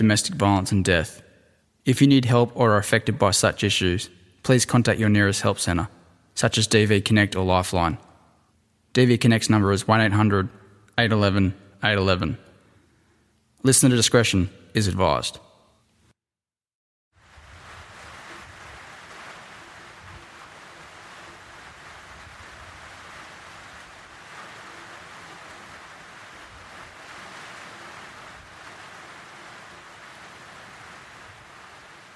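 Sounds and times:
speech: 0.0 - 1.2, 1.8 - 8.1, 9.0 - 12.5, 13.6 - 15.5
heavy rain with a low rumbling undertone: 17.2 - 32.1.

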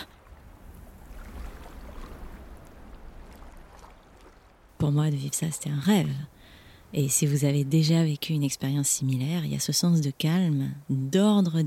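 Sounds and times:
steady low wash of lake water: 0.0 - 7.4
light wind: 0.0 - 11.6
canoe paddle stroking through lake water: 0.1 - 4.8
speech: 4.8 - 11.6.

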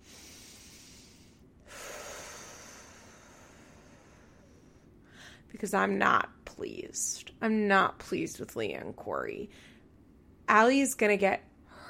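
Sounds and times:
deep meditative breathing: 0.0 - 5.5
speech: 5.6 - 9.7, 10.5 - 11.5.

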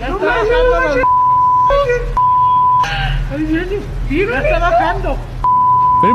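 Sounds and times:
speech: 0.1 - 2.2, 3.3 - 5.3
censor-style beep in a played video recording: 1.0 - 2.9, 5.4 - 6.1.

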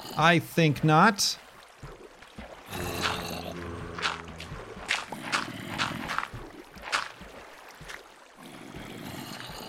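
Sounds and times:
water rushing and pouring in, flooding: 0.0 - 9.6
speech: 0.2 - 1.4
sharp water splashes: 1.3 - 9.0.

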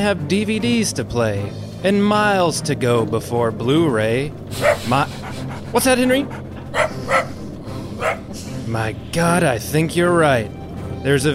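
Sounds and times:
speech: 0.0 - 7.3, 8.7 - 11.3
dog barking: 4.5 - 5.0, 6.6 - 8.3.

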